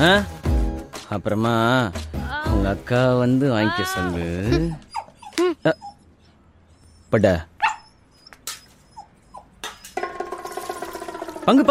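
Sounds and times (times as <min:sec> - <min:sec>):
speech: 0:00.0 - 0:00.4, 0:01.1 - 0:04.9, 0:07.1 - 0:07.5, 0:11.4 - 0:11.6
dog whimpering and yelping: 0:03.6 - 0:10.0
dog barking: 0:07.6 - 0:08.0.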